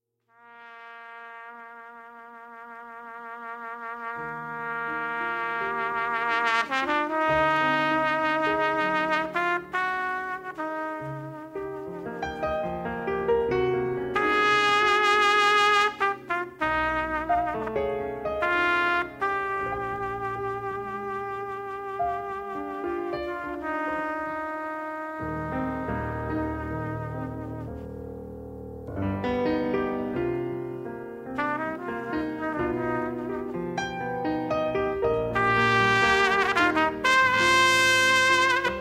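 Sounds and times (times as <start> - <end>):
piano playing a ballad: 0.2 - 38.7
trumpet playing a ballad: 0.3 - 12.9, 14.1 - 28.0, 31.3 - 38.7.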